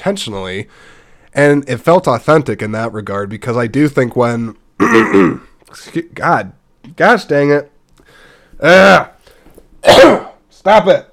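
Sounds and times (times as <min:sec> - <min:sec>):
speech: 0:00.0 - 0:07.7, 0:08.6 - 0:09.1, 0:09.8 - 0:11.1
person clearing throat: 0:04.8 - 0:05.6, 0:09.8 - 0:10.4.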